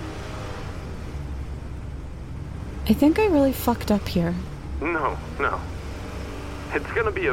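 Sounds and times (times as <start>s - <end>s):
bus engine accelerating at night: 0.0s - 7.3s
road noise inside a moving bus: 0.0s - 7.3s
speech: 2.9s - 5.8s, 6.7s - 7.3s.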